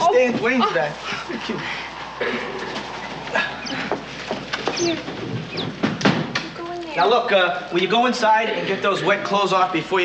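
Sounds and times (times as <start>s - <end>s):
rustling: 0.0s - 7.0s
speech: 0.2s - 3.5s, 4.8s - 5.8s, 7.0s - 10.0s
bird chirping: 2.2s - 5.9s.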